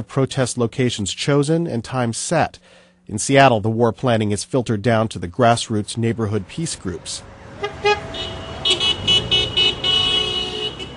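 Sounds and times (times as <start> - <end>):
speech: 0.0 - 8.2
steady traffic noise: 5.9 - 10.9
car horns honking at a street protest against the Iraq war in Seattle: 7.5 - 10.9.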